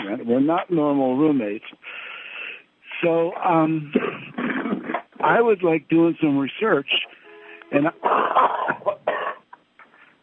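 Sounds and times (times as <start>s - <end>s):
speech: 0.1s - 2.1s, 3.0s - 4.6s, 5.2s - 7.1s, 7.7s - 8.5s
person coughing in harsh throaty bursts: 3.9s - 5.0s, 8.0s - 9.5s.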